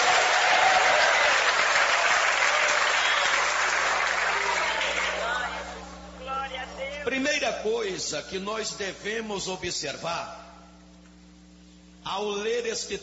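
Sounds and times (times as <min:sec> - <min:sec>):
audience applauding at a church service: 0:00.0 - 0:05.8
religious praise: 0:00.0 - 0:05.8
speech: 0:07.6 - 0:10.5, 0:12.1 - 0:13.0.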